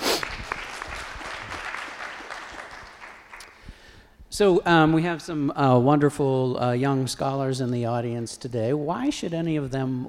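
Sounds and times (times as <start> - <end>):
audience applauding: 0.0 - 3.8
speech: 4.4 - 10.0.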